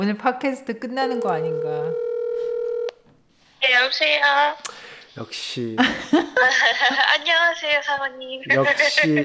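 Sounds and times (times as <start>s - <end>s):
speech: 0.0s - 2.6s, 3.6s - 9.2s
electronic phone ringing tone from an outgoing call: 1.0s - 3.0s.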